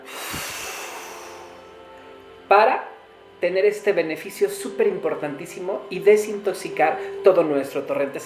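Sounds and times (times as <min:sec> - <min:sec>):
forceful nasal exhale during a breathing exercise: 0:00.0 - 0:01.8
speech: 0:02.5 - 0:08.2.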